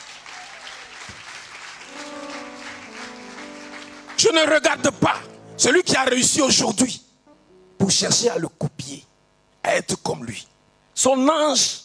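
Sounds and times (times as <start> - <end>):
congregation applauding during a church service: 0.0 - 6.4
faint held musical tones: 1.8 - 9.0
speech: 4.2 - 7.0, 7.9 - 11.8.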